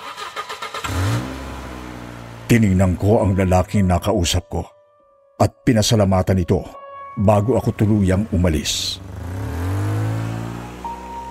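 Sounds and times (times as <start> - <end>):
car engine starting and revving: 0.0 - 3.0, 8.2 - 11.2
speech: 2.5 - 4.8, 5.4 - 9.1.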